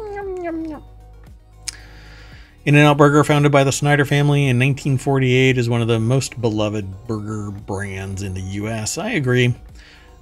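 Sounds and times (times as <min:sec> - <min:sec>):
person imitating a hungry kitten's meow: 0:00.0 - 0:00.9
speech: 0:00.5 - 0:01.0, 0:02.6 - 0:10.0.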